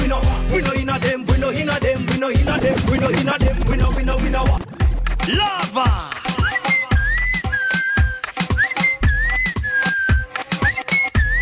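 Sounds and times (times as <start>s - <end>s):
steady music beat: 0.0s - 11.4s
bright whistled melody in a song: 6.3s - 11.4s.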